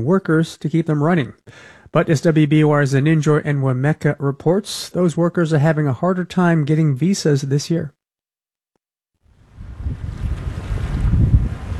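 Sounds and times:
speech: 0.0 - 8.0
blustery sea wind on Cape Cod: 9.3 - 11.7
ocean surf churning on Cape Cod: 9.4 - 11.7.

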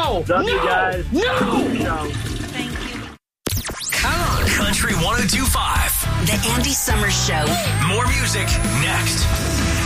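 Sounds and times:
speech: 0.2 - 2.7, 4.0 - 9.7
toilet flushing: 1.4 - 3.2.

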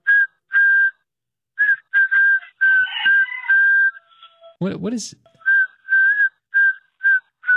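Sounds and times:
man whistling a birthday tune into a phone: 0.0 - 4.1, 5.4 - 7.5
speech: 4.6 - 5.4.

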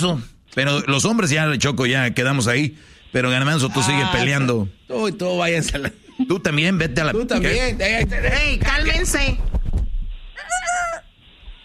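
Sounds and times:
speech: 0.0 - 9.6
rooster crowing: 10.4 - 11.1.

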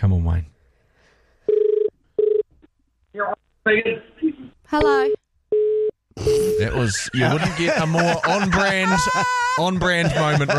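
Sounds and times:
speech: 0.0 - 0.6, 3.2 - 5.2, 6.2 - 10.5
outgoing phone call ringing tone: 1.5 - 2.4, 5.5 - 6.7
laughter: 6.6 - 10.5.

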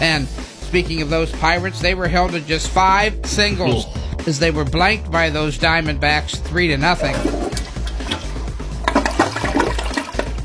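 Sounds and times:
speech: 0.0 - 7.4
toilet flushing: 6.8 - 10.4.

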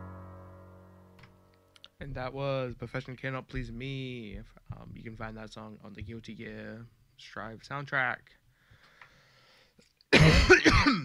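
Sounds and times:
speech: 2.0 - 8.4
harsh throaty cough: 10.1 - 11.0.

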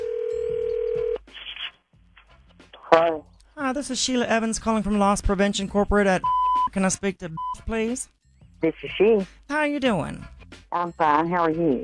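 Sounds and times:
steady telephone dial tone: 0.0 - 1.2
speech: 3.0 - 11.8.

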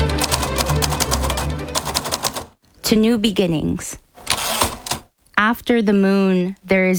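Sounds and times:
typewriter keys clacking: 0.0 - 2.6, 4.2 - 5.1
speech: 2.9 - 4.0, 5.4 - 6.9.

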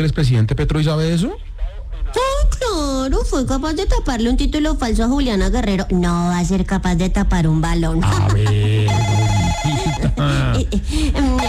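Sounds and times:
speech: 0.0 - 2.2, 2.8 - 8.8, 10.1 - 11.4
laughter: 8.0 - 11.4
telephone ringing with a warbling electronic ringtone: 8.1 - 10.5.

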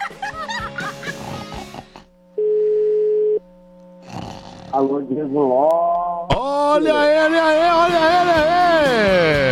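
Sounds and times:
laughter: 0.0 - 1.6
faint low hum: 2.0 - 7.6
telephone ringback tone while placing a call: 2.4 - 3.4
speech: 4.7 - 5.9, 6.8 - 9.4.

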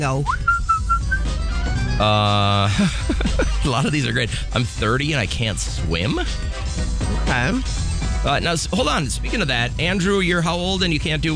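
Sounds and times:
speech: 0.0 - 0.5, 2.0 - 11.3
person whistling short high notes with pursed lips: 0.3 - 1.4
laughter: 2.0 - 4.6.

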